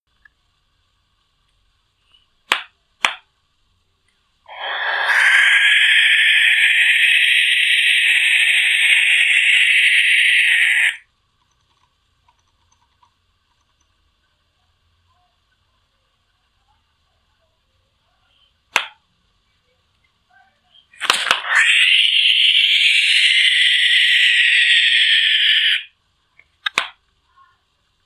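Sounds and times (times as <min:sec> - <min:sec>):
rasga-mortalha owl calling: 0:04.5 - 0:11.0, 0:21.0 - 0:25.9.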